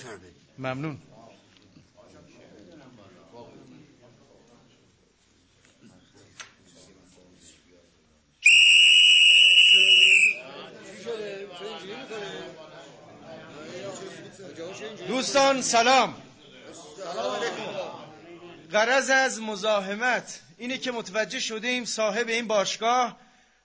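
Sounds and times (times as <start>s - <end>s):
speech: 0.0s - 1.1s, 14.8s - 16.2s, 18.7s - 23.2s
quiet talk: 0.0s - 8.6s, 9.4s - 19.5s
murmur of several voices speaking: 0.0s - 21.4s
shrill blast of a borrowed whistle in a club: 8.4s - 10.4s.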